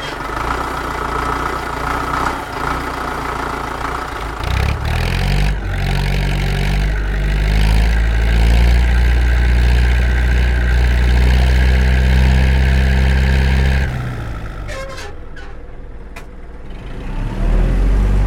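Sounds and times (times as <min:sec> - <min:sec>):
4.8 liter diesel engine growling, revving and idling: 0:00.0 - 0:18.2.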